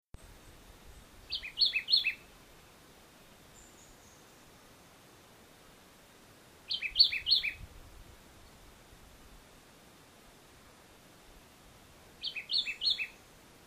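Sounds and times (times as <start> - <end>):
Vireo modestus singing in Jamaica: 0.9 - 2.3, 3.5 - 4.6, 6.7 - 7.6, 12.2 - 13.3.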